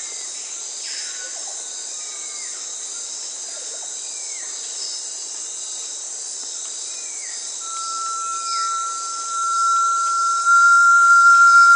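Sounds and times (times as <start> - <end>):
loud constant high hiss of insects in South America: 0.0 - 11.7
Brazilian tinamou long steady whistle in South America: 7.6 - 11.7.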